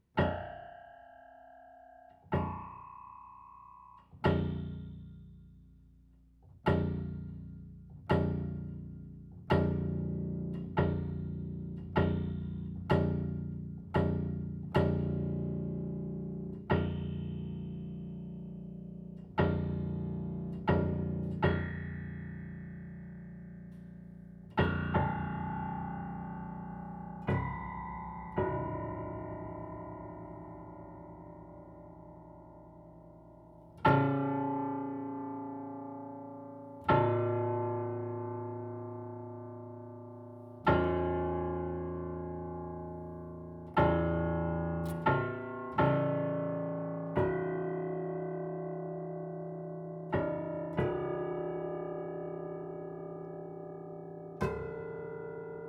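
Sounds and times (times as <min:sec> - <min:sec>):
grand piano multiphonics and flageolets: 0:02.3 - 0:55.6.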